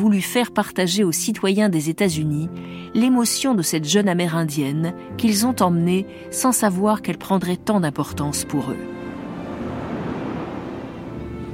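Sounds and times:
speech: 0.0 - 9.0
ocean waves and surf with a giant wave rising: 8.8 - 11.5.

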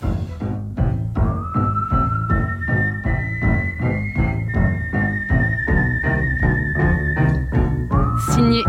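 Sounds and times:
whistled melody from a film score: 0.4 - 8.6.

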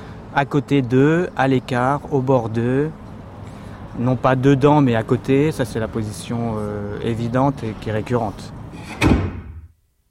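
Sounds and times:
speech: 0.4 - 3.0, 4.0 - 9.2
door opening with a woody thump and rattle: 8.8 - 9.7.

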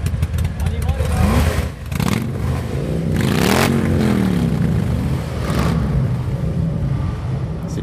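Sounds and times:
Harley-Davidson motorcycle engines revving: 0.0 - 7.8.

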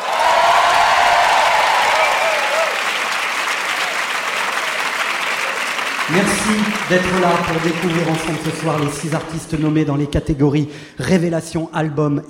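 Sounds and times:
large concert audience applauding and cheering at the Casino de Paris: 0.0 - 9.8
speech: 6.1 - 12.2.

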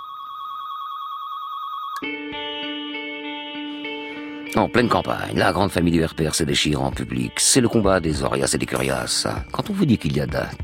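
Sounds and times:
telephone ringing: 0.0 - 2.2
speech: 4.6 - 10.6.

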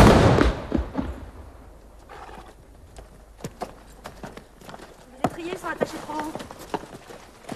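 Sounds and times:
horse hooves trotting at a fast pace: 1.8 - 7.5.

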